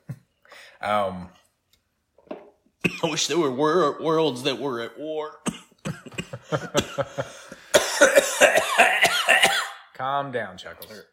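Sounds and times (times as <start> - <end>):
speech: 0.8 - 1.4, 2.8 - 5.5, 6.5 - 11.1
person coughing after inhaling soda: 2.9 - 3.2, 5.4 - 9.9.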